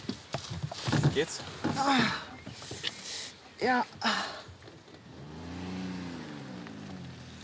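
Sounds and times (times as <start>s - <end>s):
speech: 1.2s - 2.3s, 3.6s - 4.4s
car engine humming and revving as the vehicle accelerates: 5.0s - 7.4s.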